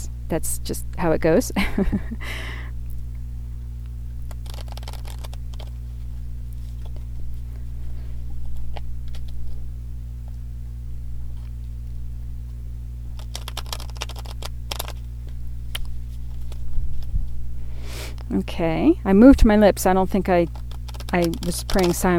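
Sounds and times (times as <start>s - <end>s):
low electrical hum: 0.0s - 22.1s
speech: 0.3s - 2.6s, 18.3s - 22.1s
tarot cards being shuffled: 4.2s - 9.7s, 13.1s - 17.4s, 20.5s - 22.1s.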